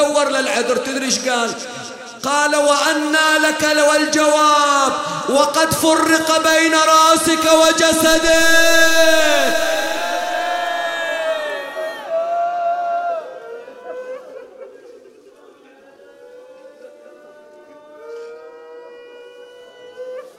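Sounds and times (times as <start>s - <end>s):
speech: 0.2s - 9.8s
crowd of mourners weeping and wailing: 8.0s - 15.0s.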